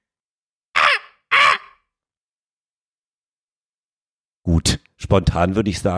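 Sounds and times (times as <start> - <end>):
voice imitating raven caws: 0.7 - 1.9
speech: 4.5 - 5.9.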